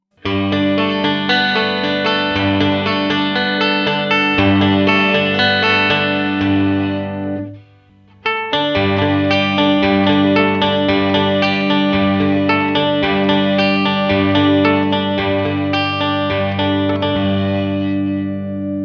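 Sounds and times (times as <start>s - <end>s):
amplified 12-string guitar riffing: 0.2s - 18.8s.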